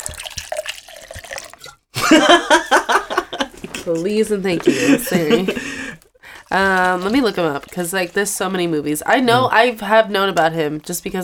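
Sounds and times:
drink being poured from a bottle: 0:00.0 - 0:01.9, 0:06.3 - 0:08.7
laughter: 0:02.0 - 0:06.0
speech: 0:03.9 - 0:05.7, 0:06.5 - 0:11.2
person talking loudly: 0:09.1 - 0:09.6.

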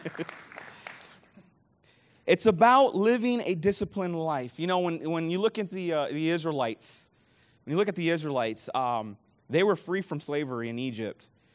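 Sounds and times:
speech: 0:00.0 - 0:00.5, 0:02.3 - 0:07.1, 0:07.7 - 0:11.3
few people clapping: 0:00.0 - 0:01.6.

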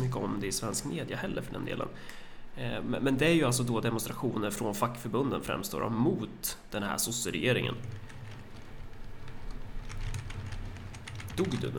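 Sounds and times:
speech: 0:00.2 - 0:08.2, 0:11.4 - 0:11.7
typing on a computer keyboard: 0:07.8 - 0:11.7.

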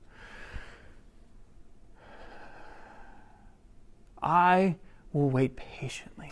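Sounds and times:
deep breath in and out: 0:00.0 - 0:01.2, 0:01.9 - 0:03.7
speech: 0:04.2 - 0:06.2.

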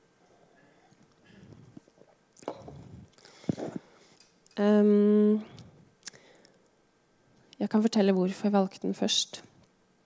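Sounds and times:
person drinking water with soft gulps and wet swallowing: 0:01.2 - 0:03.8
speech: 0:04.6 - 0:05.5, 0:07.7 - 0:09.5.

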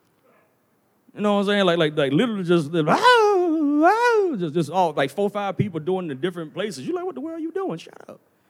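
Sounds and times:
speech: 0:01.2 - 0:08.3
person letting out a loud drawn-out wailing yell: 0:02.9 - 0:04.4.

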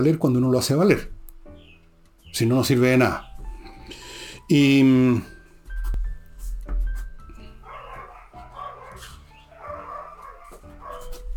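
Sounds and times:
speech: 0:00.0 - 0:01.2, 0:02.3 - 0:03.3, 0:03.9 - 0:05.3
several dogs barking frantically: 0:07.4 - 0:11.3.

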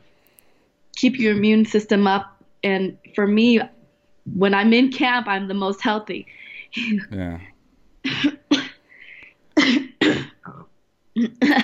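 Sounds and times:
speech: 0:01.0 - 0:07.5, 0:11.2 - 0:11.6
throaty vocal sound: 0:07.1 - 0:07.5
harsh coughing: 0:08.0 - 0:08.8, 0:09.6 - 0:10.4, 0:11.2 - 0:11.6.

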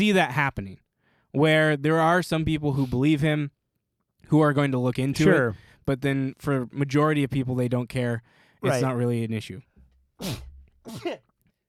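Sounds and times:
speech: 0:00.0 - 0:03.6, 0:04.3 - 0:11.3
person sneezing: 0:10.2 - 0:11.3.

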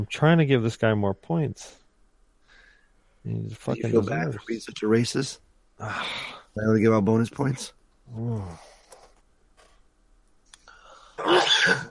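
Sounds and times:
speech: 0:00.0 - 0:01.8, 0:03.2 - 0:08.7, 0:11.6 - 0:11.8
person sneezing: 0:11.2 - 0:11.8.

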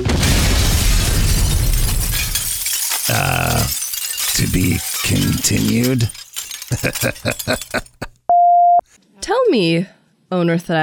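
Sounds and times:
shattering explosion of a Shatter spell being cast: 0:00.0 - 0:06.1
crashing breaking debris: 0:00.0 - 0:08.0
speech: 0:04.6 - 0:08.0, 0:09.3 - 0:10.8.

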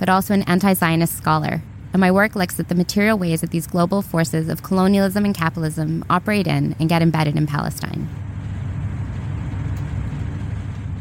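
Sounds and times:
speech: 0:00.0 - 0:08.2
passenger train rumbling, heard from inside while riding: 0:00.9 - 0:11.0.

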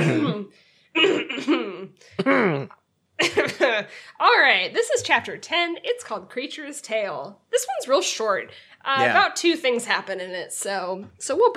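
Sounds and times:
person clearing throat: 0:00.0 - 0:03.6
speech: 0:00.1 - 0:11.5.

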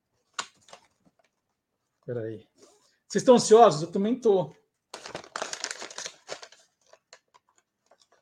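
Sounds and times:
speech: 0:02.1 - 0:04.6
plastic bag crinkling while untying a knot: 0:04.9 - 0:08.2.

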